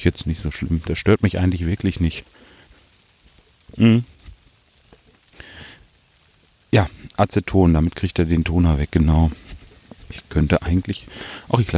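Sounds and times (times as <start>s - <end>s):
speech: 0.0s - 2.5s, 3.8s - 4.1s, 6.7s - 9.5s, 10.1s - 11.7s
rain pattering in a forest: 0.0s - 11.7s.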